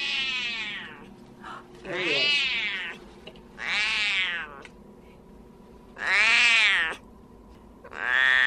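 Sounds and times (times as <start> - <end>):
male Siamese cat in a kennel at an animal shelter meowing loudly: 0.0 - 1.0, 1.9 - 3.0, 3.6 - 4.6, 6.0 - 7.0, 7.9 - 8.4
low hum: 0.0 - 8.4.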